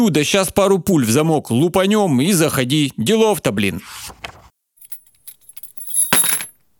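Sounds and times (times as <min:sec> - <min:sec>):
speech: 0:00.0 - 0:04.4
bunch of apartment keys jingling and clinking: 0:04.8 - 0:06.6.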